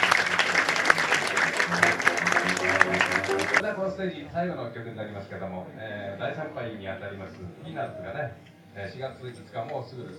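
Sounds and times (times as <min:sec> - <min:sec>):
audience applause at a live pop concert: 0:00.0 - 0:03.6
speech: 0:03.6 - 0:10.1.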